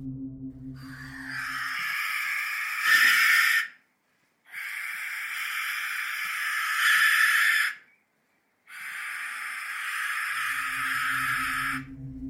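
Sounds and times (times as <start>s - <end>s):
Australian possum defense call: 0.8s - 3.8s, 4.5s - 7.9s, 8.7s - 11.9s.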